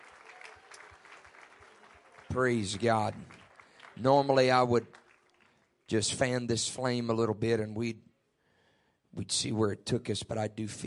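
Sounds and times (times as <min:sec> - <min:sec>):
audience clapping in a large room: 0:00.0 - 0:06.4
speech: 0:02.3 - 0:03.4, 0:04.0 - 0:05.0, 0:05.9 - 0:08.1, 0:09.2 - 0:10.8.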